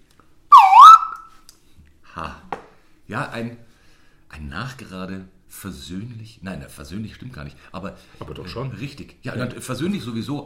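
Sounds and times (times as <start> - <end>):
short whistle signalling a tie: 0.5 - 1.3
speech: 3.1 - 3.7, 4.3 - 10.4.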